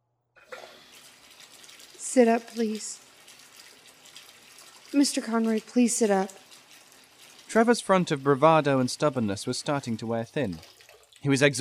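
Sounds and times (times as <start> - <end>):
hot water gushing from a tap into a bath: 0.4 - 11.5
speech: 2.1 - 3.1, 4.9 - 6.4, 7.6 - 11.5.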